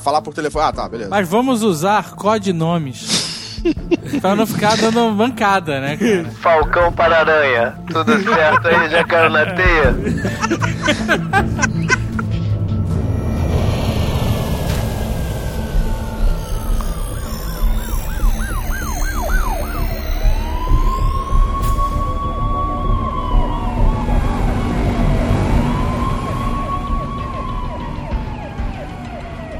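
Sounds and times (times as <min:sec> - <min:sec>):
speech: 0:00.0 - 0:12.0
laughter: 0:03.1 - 0:05.3, 0:05.9 - 0:06.4, 0:07.8 - 0:12.5
several police car sirens wailing as they converge on a city: 0:06.4 - 0:29.5.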